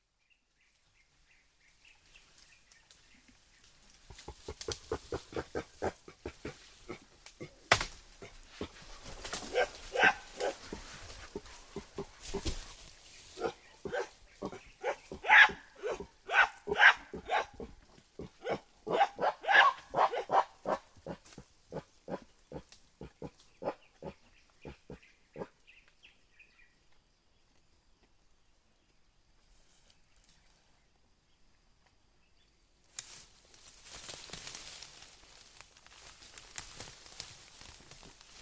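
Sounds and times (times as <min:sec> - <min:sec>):
mountain gorilla: 0:04.1 - 0:12.6, 0:13.3 - 0:25.6.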